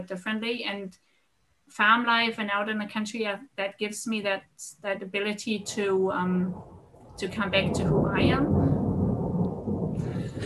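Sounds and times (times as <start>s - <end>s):
speech: 0.0s - 1.1s, 1.7s - 8.7s
faint hiss of rain: 0.0s - 10.4s
thunder rumbling during a thunderstorm: 5.6s - 10.4s.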